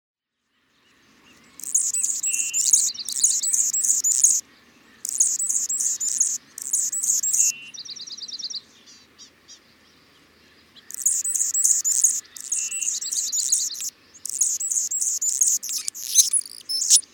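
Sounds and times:
Anna's hummingbird scattered chips: 1.6s - 4.4s, 11.0s - 17.0s
Anna's hummingbird song of high dry buzzy scratchy phrases and trills: 1.6s - 4.4s, 5.1s - 7.5s, 10.9s - 17.0s.

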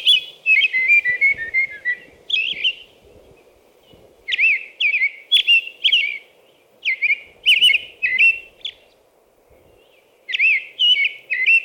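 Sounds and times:
American robin carolling: 0.0s - 3.0s, 3.8s - 8.9s, 9.6s - 11.6s.

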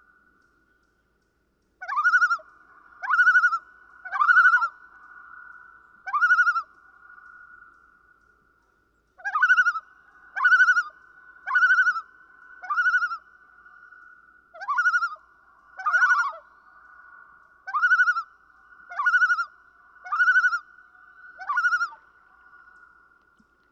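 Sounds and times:
common loon calling: 1.8s - 5.1s, 6.0s - 6.8s, 9.2s - 15.2s, 15.8s - 16.5s, 17.5s - 22.4s.

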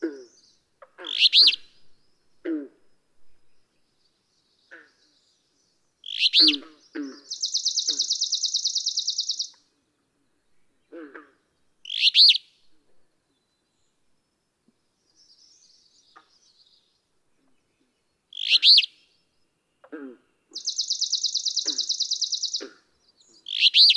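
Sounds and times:
alder flycatcher singing burry phrase: 0.3s - 2.4s, 3.4s - 9.6s, 11.8s - 12.7s, 13.3s - 19.7s, 20.5s - 23.9s
long high buzzy bird trill: 6.1s - 9.6s, 20.6s - 22.7s.

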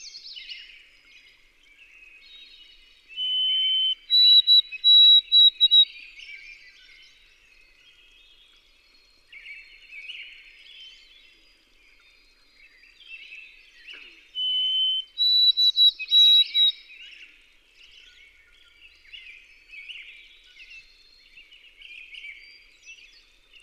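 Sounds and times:
White-throated sparrow singing a clear whistled phrase: 3.2s - 5.9s, 14.4s - 16.8s.

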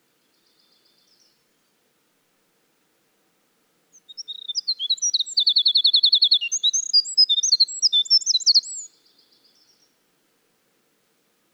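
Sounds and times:
winter wren singing: 4.0s - 8.9s.

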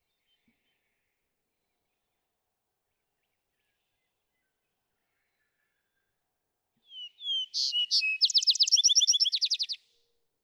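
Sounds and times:
vesper sparrow singing: 6.9s - 9.8s.

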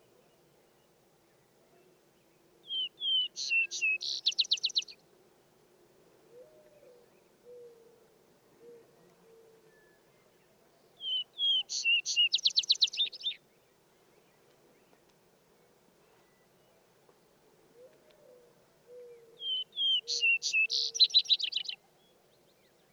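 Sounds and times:
Vesper sparrow singing: 2.7s - 5.0s, 11.0s - 13.4s, 19.4s - 22.8s.

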